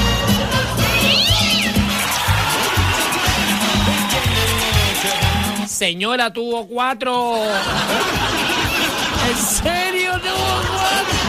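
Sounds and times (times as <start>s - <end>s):
laughter: 0.0s - 5.7s, 7.3s - 11.2s
cat meowing: 0.9s - 1.8s
speech: 5.8s - 8.5s, 9.3s - 11.2s.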